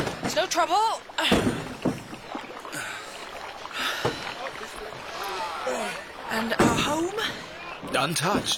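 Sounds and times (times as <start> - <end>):
steady wash of water: 0.0 - 8.5
speech: 0.4 - 1.6, 6.3 - 8.5
goods loaded into a wooden rowboat knocking against the hull: 1.2 - 2.5, 4.0 - 4.6, 6.5 - 7.1
faint murmuring voices: 3.6 - 8.2.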